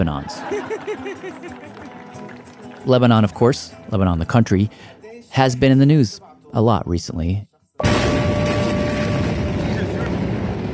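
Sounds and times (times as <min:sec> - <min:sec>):
laughter: 0:00.0 - 0:02.8
speech: 0:00.0 - 0:07.5
enormous explosion: 0:07.8 - 0:10.7.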